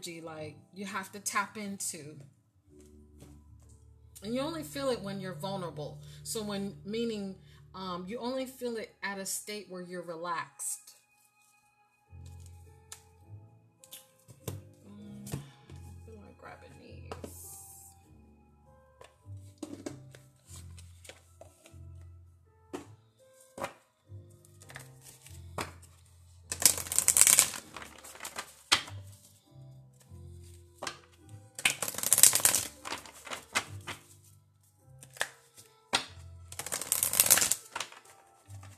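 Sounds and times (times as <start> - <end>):
speech: 0.0 - 2.4, 4.2 - 10.9
cards being squared and handled with taps and clicks: 13.8 - 15.8, 19.0 - 21.8, 22.7 - 23.8, 24.4 - 29.2, 30.8 - 34.2, 35.0 - 38.7
deck of cards being shuffled: 19.0 - 21.8, 24.4 - 29.4, 30.0 - 34.3, 35.0 - 38.7.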